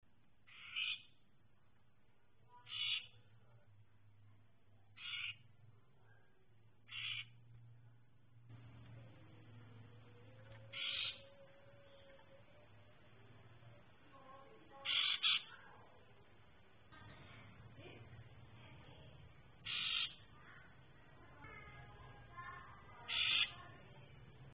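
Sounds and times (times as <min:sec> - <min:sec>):
female cipo bird calling: 0:00.5 - 0:01.1, 0:02.6 - 0:03.3, 0:05.0 - 0:05.4, 0:06.9 - 0:07.4, 0:09.9 - 0:13.0, 0:14.6 - 0:15.9, 0:19.6 - 0:20.3, 0:22.9 - 0:23.8.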